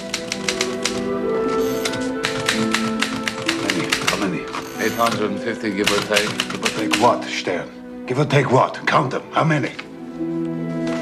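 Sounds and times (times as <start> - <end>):
typewriter keys clacking: 0.0 - 1.0, 1.6 - 7.2
sustained orchestral music: 0.0 - 11.0
speech: 5.0 - 9.8.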